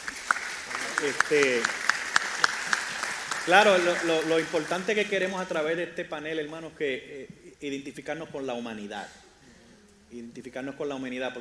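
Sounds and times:
rhythmic clapping at a Thanksgiving church service: 0.0 - 5.6
speech: 1.0 - 1.8, 3.4 - 9.2, 10.1 - 11.3.

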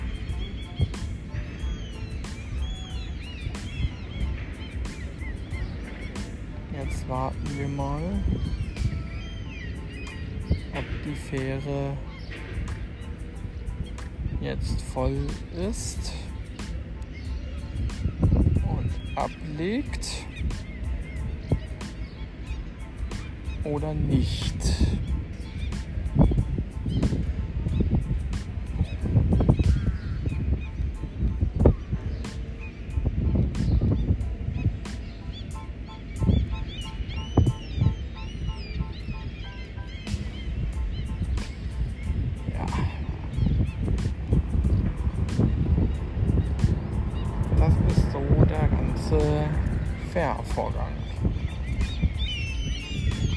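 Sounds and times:
many seagulls calling by the water at an island ferry landing: 0.0 - 53.3
steady low rumble of waterside activity: 0.0 - 53.3
speech: 7.1 - 8.6, 10.8 - 12.1, 14.4 - 16.2, 19.2 - 20.3, 23.6 - 25.1.

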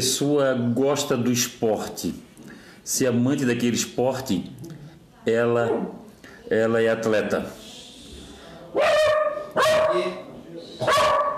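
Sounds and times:
speech: 0.0 - 2.3, 2.9 - 7.6
low murmur: 4.5 - 11.3
dog barking: 8.8 - 10.2, 10.8 - 11.3.

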